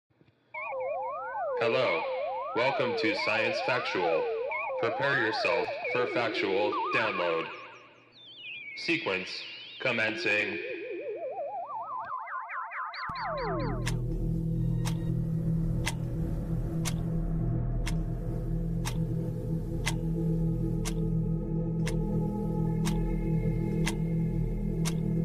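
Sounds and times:
rising electronic sweeps: 0.6s - 25.2s
speech: 1.6s - 7.6s, 8.8s - 10.7s, 13.2s - 14.0s
ominous clock ticking: 1.6s - 10.6s, 13.0s - 25.2s
low dark sustained drone: 13.1s - 25.2s.

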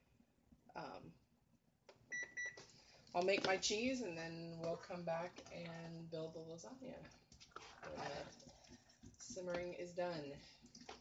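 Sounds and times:
speech: 0.8s - 1.2s, 3.1s - 7.2s, 7.8s - 8.6s, 9.3s - 10.6s
kitchen timer beeping while cooking lasagna sauce: 2.1s - 2.6s.

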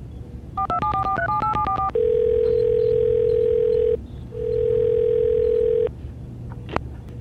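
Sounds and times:
faint hum: 0.0s - 7.1s
telephone keypad beeps while dialing a number: 0.6s - 5.9s.

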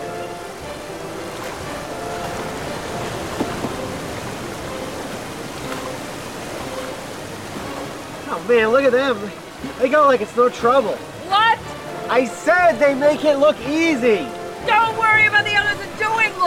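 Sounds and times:
river rapids rushing water: 0.0s - 16.4s
water splashes during a paddling run: 0.0s - 16.4s
speech: 8.4s - 11.1s, 12.1s - 16.4s.

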